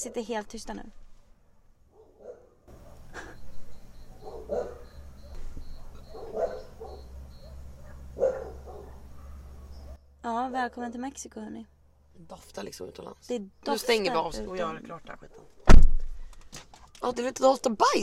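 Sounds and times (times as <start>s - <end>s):
speech: 0.0s - 1.0s, 10.2s - 15.6s, 17.0s - 18.0s
dogs barking outside through open door: 1.8s - 10.8s, 15.1s - 15.7s
high insect chirr: 3.1s - 7.8s.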